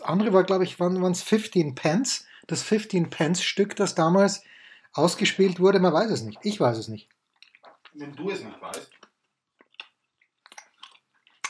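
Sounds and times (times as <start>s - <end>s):
speech: 0.1s - 7.2s, 8.0s - 9.0s
wet smacking while chewing food: 7.0s - 8.0s, 8.7s - 11.4s.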